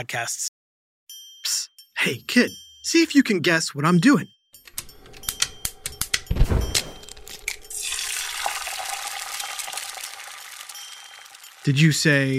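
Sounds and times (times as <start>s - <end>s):
speech: 0.0s - 0.5s, 2.0s - 4.4s, 11.7s - 12.3s
egg cracked and dropped into a hot pan: 7.0s - 11.7s
egg frying in a hot pan on the stove: 7.7s - 11.8s.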